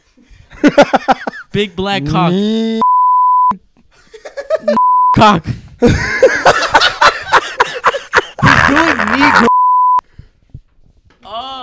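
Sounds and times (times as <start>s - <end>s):
laughter: 0.5s - 1.5s, 3.9s - 4.8s, 5.8s - 9.5s
speech: 1.6s - 2.9s, 4.6s - 6.4s
loud steady censorship bleep tone: 2.8s - 3.6s, 4.8s - 5.3s, 9.4s - 10.0s.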